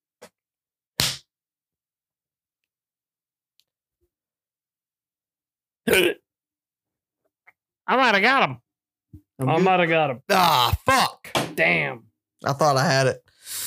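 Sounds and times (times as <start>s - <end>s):
person hiccuping: 5.9s - 6.2s
speech: 7.9s - 8.6s, 9.4s - 13.6s.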